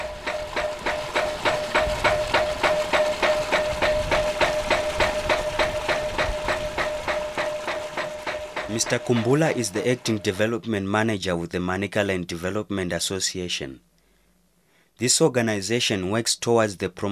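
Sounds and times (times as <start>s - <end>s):
ram pump water-lifting machine clacking in rural Manicaland: 0.0s - 10.5s
speech: 8.8s - 13.9s, 15.0s - 17.1s.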